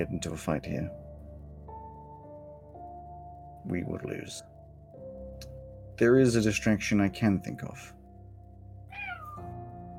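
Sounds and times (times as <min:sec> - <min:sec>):
speech: 0:00.0 - 0:01.0, 0:03.6 - 0:04.5, 0:05.4 - 0:08.0
video game cat meow from an illusion spell: 0:08.9 - 0:09.6.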